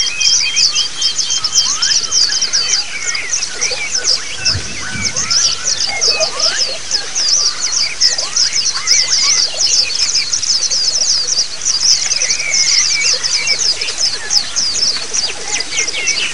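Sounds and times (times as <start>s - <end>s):
chorus of several white-eyes singing together: 0.0s - 16.3s
low thump: 4.4s - 6.4s.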